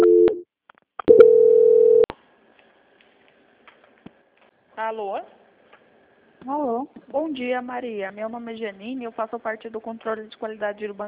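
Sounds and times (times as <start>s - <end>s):
telephone tones while a call is transferred: 0.0s - 0.4s, 1.1s - 2.1s
speech: 4.9s - 5.4s, 6.4s - 11.0s.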